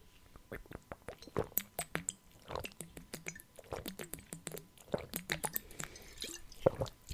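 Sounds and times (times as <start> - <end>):
sipping and swallowing of water: 0.5 - 7.1.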